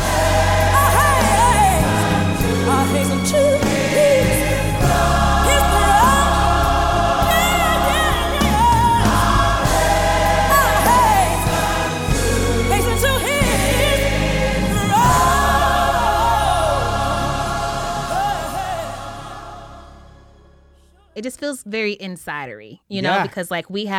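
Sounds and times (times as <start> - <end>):
crowd singing gospel in call and response: 0.0 - 20.6
speech: 21.5 - 23.9.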